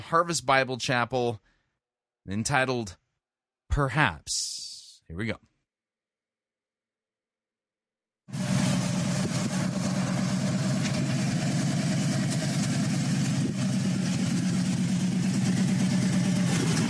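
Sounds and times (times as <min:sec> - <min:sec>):
speech: 0:00.1 - 0:01.5, 0:02.3 - 0:03.0, 0:03.7 - 0:05.5
motorcycle engine idling: 0:08.3 - 0:16.8.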